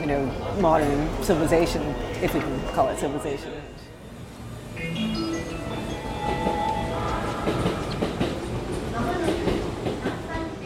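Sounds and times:
electric commuter train rolling along the rails: 0.0s - 10.6s
speech: 0.1s - 3.9s.

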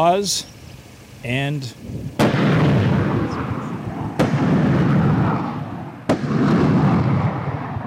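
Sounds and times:
speech: 0.0s - 0.6s, 1.2s - 2.5s
truck-mounted launcher rockets firing beside a field of dead sunflowers: 2.1s - 7.8s.

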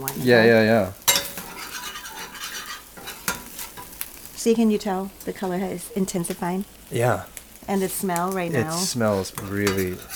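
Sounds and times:
speech: 0.0s - 1.0s, 4.4s - 10.1s
soft sizzle of curry paste and coconut milk in a pan: 0.0s - 10.1s
curry paste and coconut milk being stirred in a pan: 1.0s - 4.0s, 8.8s - 10.1s.

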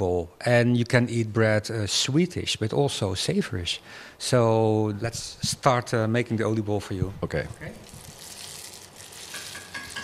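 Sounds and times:
speech: 0.0s - 7.9s
dough frying in deep oil: 7.7s - 10.0s.

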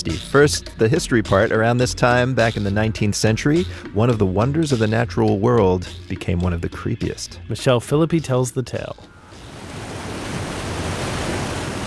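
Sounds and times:
speech: 0.1s - 9.2s
roaring waterfall: 9.3s - 11.8s.

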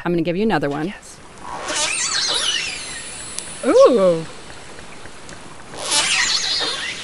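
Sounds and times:
speech: 0.0s - 1.1s, 3.6s - 4.4s
killer whales calling underwater recorded by hydrophone: 1.5s - 7.0s.

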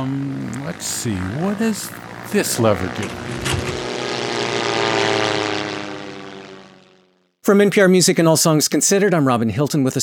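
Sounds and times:
speech: 0.0s - 3.7s, 7.4s - 10.0s
propeller airplane engine droning: 0.0s - 7.4s.

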